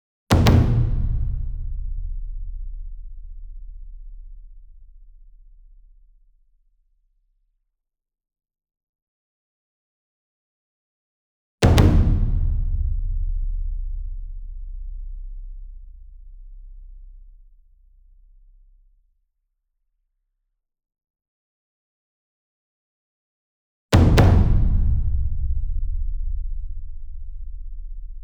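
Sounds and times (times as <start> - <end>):
single 60 inch taiko drum hit with double hard beater medium: 0.3 - 2.2, 11.6 - 14.1, 24.0 - 26.8.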